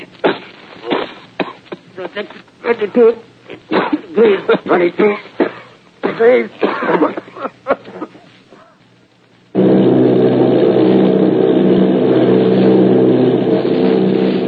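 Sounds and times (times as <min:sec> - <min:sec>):
speech: 0:02.0 - 0:05.3, 0:06.2 - 0:08.0
Army bomber plane engines droning in a flight of bombers: 0:09.6 - 0:14.4.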